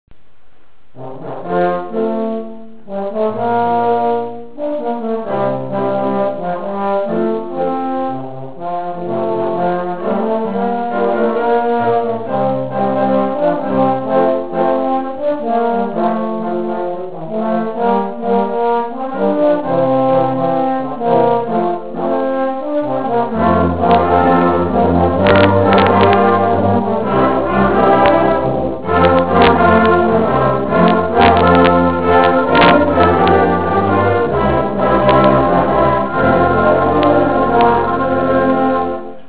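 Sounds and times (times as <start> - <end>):
trombones playing modern music: 0.9 - 39.2.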